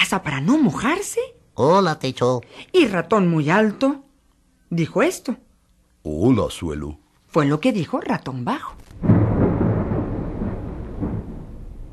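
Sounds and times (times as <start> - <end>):
speech: 0.0 - 4.0, 4.7 - 5.4, 6.0 - 9.1
steady rain hiss: 8.7 - 11.9
low rumbling roll of thunder: 8.9 - 11.9.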